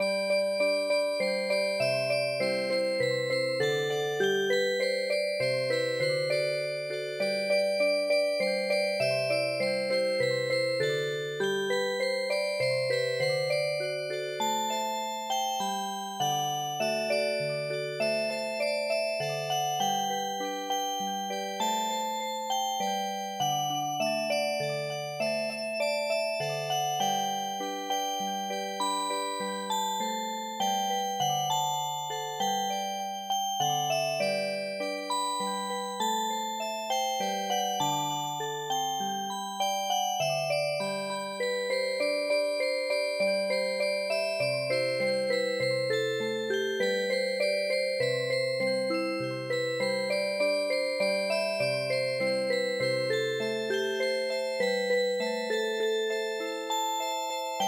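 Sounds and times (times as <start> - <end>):
MIDI music box playing a traditional tune: 0.0 - 57.6.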